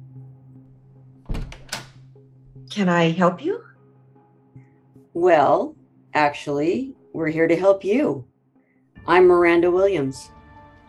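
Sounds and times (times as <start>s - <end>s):
door latch thunk: 1.3s - 2.0s
speech: 2.7s - 3.7s, 5.2s - 8.3s, 9.0s - 10.4s.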